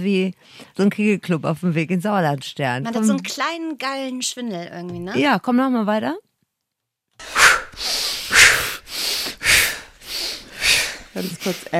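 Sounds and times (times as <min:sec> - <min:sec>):
speech: 0:00.0 - 0:06.2, 0:11.2 - 0:11.7
heavy forceful breathing during a guided breathing exercise: 0:07.2 - 0:11.7.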